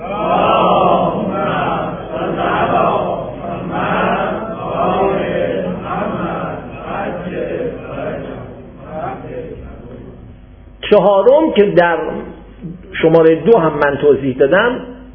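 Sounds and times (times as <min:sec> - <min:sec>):
large audience reciting salawat in unison: 0:00.0 - 0:10.4
speech: 0:10.9 - 0:12.2, 0:13.0 - 0:14.9.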